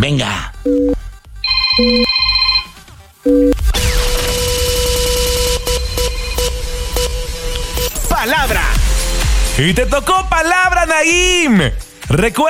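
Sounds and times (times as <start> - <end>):
speech: 0.0 - 1.0, 1.8 - 2.1, 9.6 - 12.4
electronic telephone dial beeps: 0.7 - 2.7, 3.3 - 3.6
telephone ringing: 0.7 - 3.6
dense bright noise: 4.0 - 8.3.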